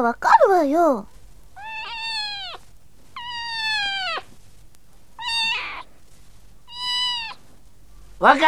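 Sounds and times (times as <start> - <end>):
speech: 0.0 - 1.1, 8.2 - 8.4
cat meowing: 1.6 - 4.4, 5.2 - 5.9, 6.7 - 7.6.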